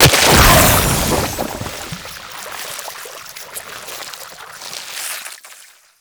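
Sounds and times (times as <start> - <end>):
inked enemy death sound effect: 0.0 - 2.1.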